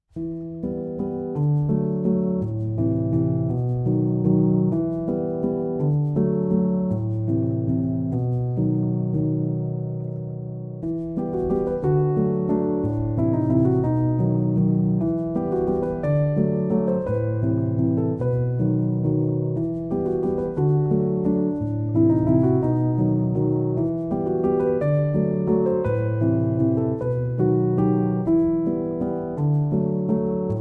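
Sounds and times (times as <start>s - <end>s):
piano sonata: 0.0s - 30.5s.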